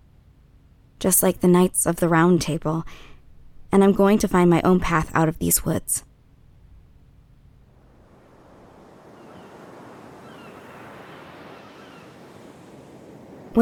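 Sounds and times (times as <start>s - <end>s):
light breeze: 0.0s - 13.6s
speech: 1.0s - 3.1s, 3.7s - 6.1s
ocean waves breaking on the shore: 7.6s - 13.6s.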